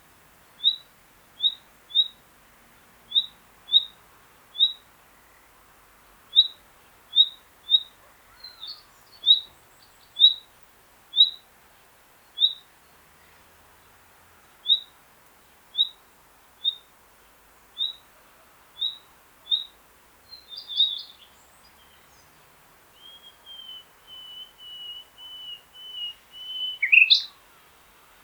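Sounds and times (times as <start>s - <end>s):
nightingale call: 0.6s - 2.2s, 3.1s - 4.0s, 4.6s - 4.9s, 6.3s - 10.5s, 11.1s - 11.5s, 12.4s - 12.7s, 14.6s - 15.0s, 15.7s - 16.0s, 16.6s - 16.9s, 17.7s - 18.1s, 18.7s - 22.3s, 22.9s - 27.7s.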